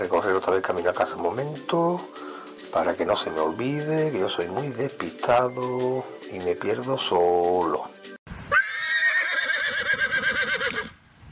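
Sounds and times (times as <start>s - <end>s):
speech: 0.0s - 8.1s
horse in the countryside whinnying with wavering pitch: 8.5s - 11.0s.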